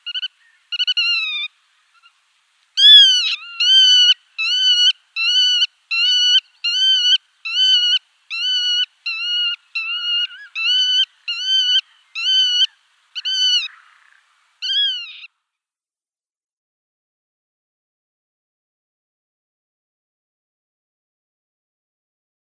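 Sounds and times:
black-tailed godwit display calls: 0.0 - 2.2, 2.8 - 15.3.

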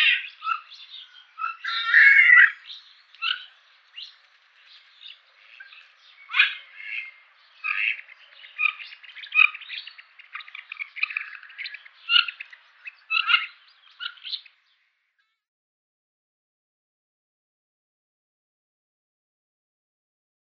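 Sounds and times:
Mandarin duck calls: 1.4 - 2.6, 6.3 - 14.4.

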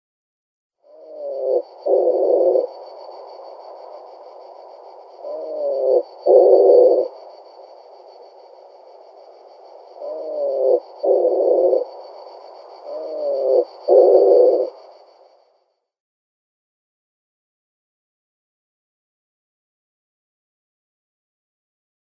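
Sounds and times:
wood pigeon calls: 1.0 - 2.7, 5.2 - 7.1, 10.0 - 11.8, 12.9 - 14.8.

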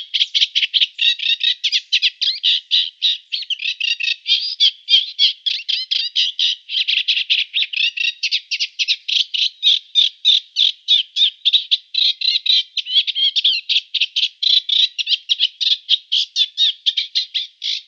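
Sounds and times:
Eurasian reed warbler song of harsh chirring notes: 0.0 - 17.8.

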